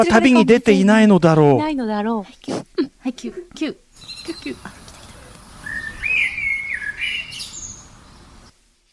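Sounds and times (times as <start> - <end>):
speech: 0.0 - 4.8
soft hiss of noise: 0.0 - 8.9
small bird chirping and warbling: 4.0 - 8.6.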